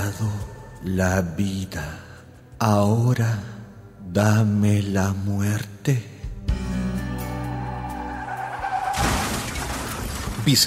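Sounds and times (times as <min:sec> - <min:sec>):
speech: 0:00.0 - 0:06.7, 0:10.4 - 0:10.6
car tires screeching in a long skid on a municipal road: 0:07.4 - 0:10.4
car crash with crunching metal and shattering glass on a municipal road: 0:07.6 - 0:10.6.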